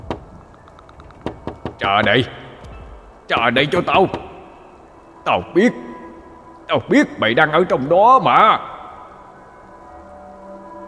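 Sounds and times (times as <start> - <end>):
knocking on a door: 1.2 - 2.8, 3.4 - 4.4
speech: 1.8 - 2.4, 3.3 - 4.2, 5.2 - 5.9, 6.7 - 8.7.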